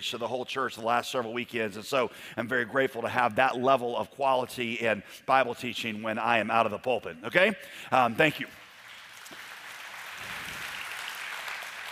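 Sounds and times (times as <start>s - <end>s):
speech: 0.0s - 8.6s
congregation applauding: 8.6s - 11.9s.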